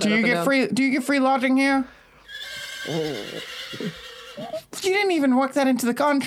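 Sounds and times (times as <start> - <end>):
speech: 0.0 - 2.0, 2.8 - 6.2
steady hiss: 1.3 - 5.4
person imitating a horse whinny: 2.3 - 4.7.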